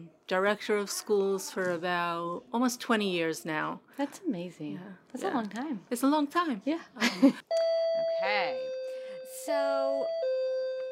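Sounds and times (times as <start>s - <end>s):
speech: 0.3s - 7.6s, 9.5s - 10.2s
electronic doorbell chime from a doorbell linked to a camera system: 7.5s - 10.8s.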